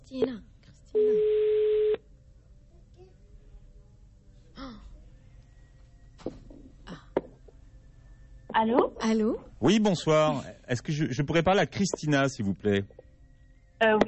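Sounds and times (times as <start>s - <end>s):
speech: 0.1s - 1.0s, 9.1s - 13.0s, 13.8s - 14.0s
telephone ring tone while a number is redialled: 1.0s - 2.0s.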